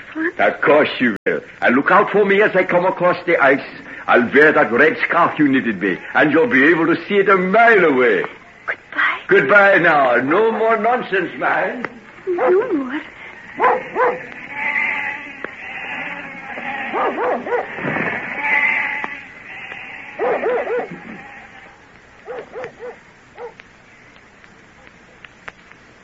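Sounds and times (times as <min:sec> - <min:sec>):
speech: 0:00.2 - 0:14.4
dog barking: 0:12.4 - 0:12.7, 0:13.6 - 0:14.3, 0:16.8 - 0:17.8, 0:20.2 - 0:21.2, 0:22.2 - 0:23.6
flock of sheep bleating as it is driven away: 0:12.5 - 0:23.6.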